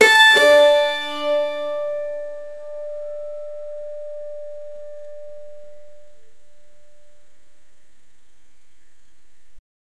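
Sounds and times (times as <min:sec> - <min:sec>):
guzheng strings played: 0:00.0 - 0:03.7.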